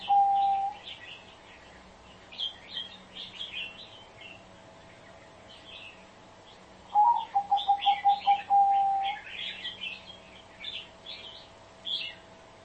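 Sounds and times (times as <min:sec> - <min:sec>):
Spotted dove calling with low coos: 0:00.0 - 0:00.9, 0:06.9 - 0:10.0
small birds chattering: 0:00.0 - 0:12.6.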